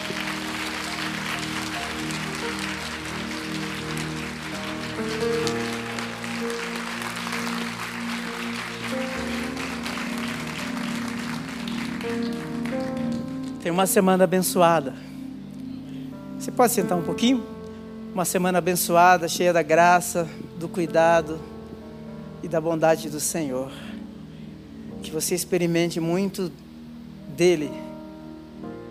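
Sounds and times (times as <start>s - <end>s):
large crowd applause: 0.0s - 13.6s
keyboard or organ chords: 0.0s - 28.9s
speech: 13.7s - 15.1s, 16.6s - 21.5s, 22.4s - 23.9s, 25.1s - 26.6s, 27.4s - 27.9s.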